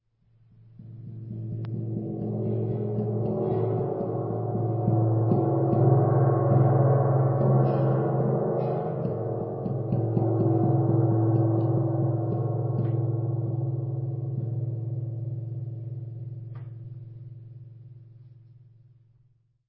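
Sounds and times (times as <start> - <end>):
large tam-tam: 0.8 - 18.0.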